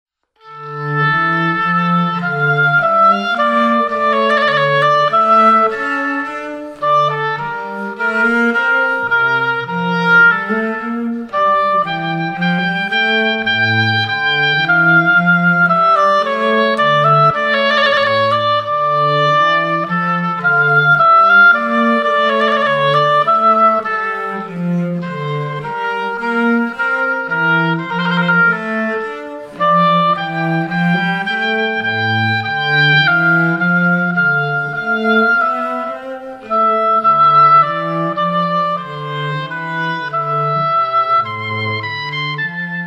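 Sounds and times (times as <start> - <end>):
classical trio playing: 0.3 - 42.8.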